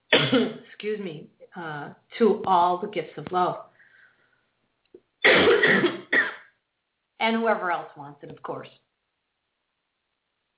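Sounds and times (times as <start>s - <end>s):
harsh rasping cough: 0.1s - 0.6s, 5.2s - 6.5s
speech: 0.3s - 3.7s, 7.2s - 8.8s.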